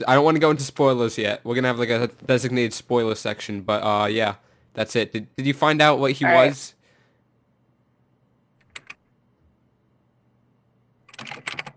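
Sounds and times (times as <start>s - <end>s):
speech: 0.0s - 6.8s
typing on a computer keyboard: 8.6s - 9.0s, 11.0s - 11.7s.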